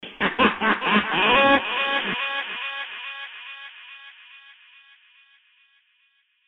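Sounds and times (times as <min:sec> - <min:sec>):
laughter with delay effect: 0:00.0 - 0:04.4.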